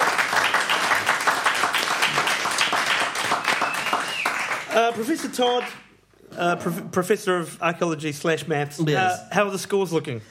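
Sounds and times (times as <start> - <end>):
crowd applauding: 0.0 - 5.9
speech: 4.8 - 5.8, 6.4 - 10.2.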